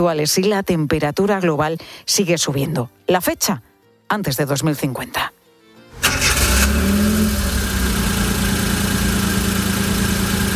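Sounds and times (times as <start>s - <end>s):
speech: 0.0s - 5.4s
car engine cranking on the coast of A Coruña, Spain: 6.0s - 10.5s.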